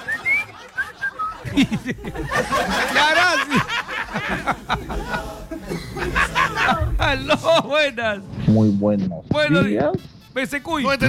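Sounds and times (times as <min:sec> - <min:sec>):
person whistling a short bright melody: 0:00.0 - 0:01.4
laughter: 0:00.0 - 0:08.0
speech: 0:01.5 - 0:03.7, 0:04.3 - 0:11.0.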